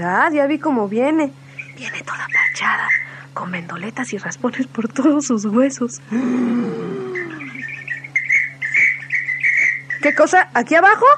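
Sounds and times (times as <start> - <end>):
speech: 0.0 - 7.0, 10.0 - 11.1
steady low hum: 0.0 - 11.1
pet parrot chirping and squawking: 1.5 - 3.3, 7.0 - 10.4.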